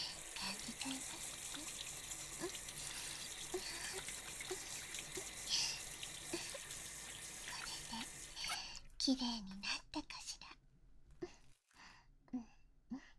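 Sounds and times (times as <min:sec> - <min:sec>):
shower water rinsing off soap foam: 0:00.0 - 0:08.6
speech: 0:09.1 - 0:10.1.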